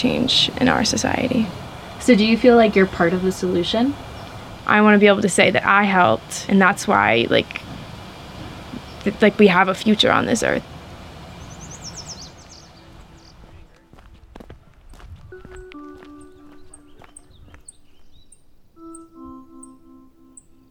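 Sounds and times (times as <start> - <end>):
yellow warbler singing: 0.0 - 7.5, 8.7 - 10.6, 11.3 - 13.7, 14.9 - 20.7
speech: 0.0 - 7.6, 9.0 - 10.7
faint outdoor noise: 0.0 - 20.7
crunching footsteps of people hiking along a lake shore: 13.5 - 18.3.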